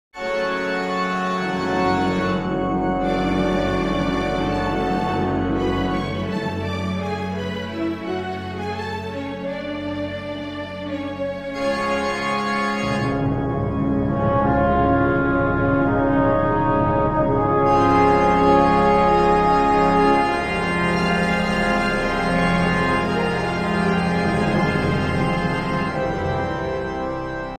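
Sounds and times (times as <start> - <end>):
organ concerto: 0.2 - 27.5.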